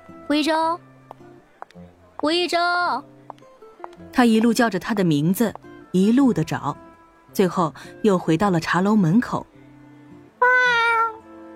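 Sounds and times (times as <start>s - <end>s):
speech: 0.3s - 0.9s, 1.8s - 3.1s, 4.2s - 9.5s
white cat meowing near a teahouse entrance at night: 10.4s - 11.3s.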